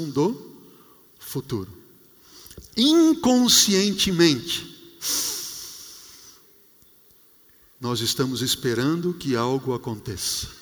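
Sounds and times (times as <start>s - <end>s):
speech: 0.0s - 0.4s, 1.3s - 1.8s, 2.8s - 5.3s, 7.8s - 10.6s
person exhaling a long breath: 5.0s - 6.4s.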